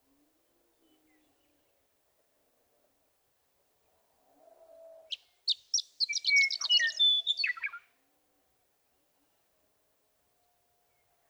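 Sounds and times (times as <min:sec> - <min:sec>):
western meadowlark singing: 0:05.1 - 0:07.8.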